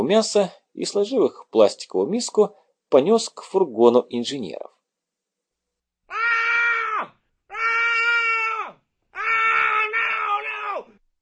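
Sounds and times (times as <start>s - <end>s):
speech: 0.0s - 4.7s
bloodcurdling screams: 6.1s - 10.9s.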